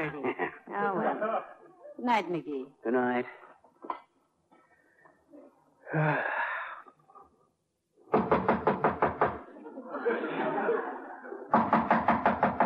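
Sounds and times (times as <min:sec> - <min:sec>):
laughter: 0:00.0 - 0:01.5, 0:09.5 - 0:11.6
speech: 0:02.0 - 0:03.4, 0:05.9 - 0:06.3
breathy sigh: 0:05.8 - 0:07.0
loud rapid knocking on a door: 0:08.1 - 0:09.4, 0:11.5 - 0:12.6.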